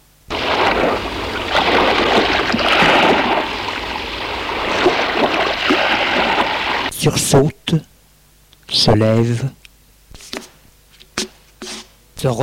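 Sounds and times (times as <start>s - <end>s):
sea waves washing and churning: 0.3s - 6.9s
wind blowing over the sea: 0.3s - 6.9s
speech: 7.1s - 7.9s, 8.7s - 9.6s, 12.2s - 12.4s.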